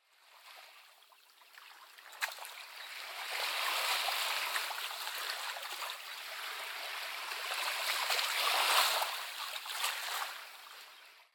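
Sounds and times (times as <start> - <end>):
waves on a lakeshore: 0.0 - 11.3.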